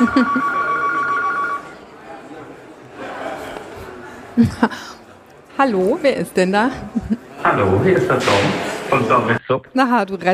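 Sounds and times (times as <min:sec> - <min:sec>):
speech: 0:00.0 - 0:00.6, 0:04.4 - 0:05.0, 0:05.6 - 0:10.3
laughter: 0:00.0 - 0:00.8, 0:04.4 - 0:05.0, 0:06.7 - 0:08.2
telephone ringing with a steady electronic trill: 0:00.0 - 0:01.8.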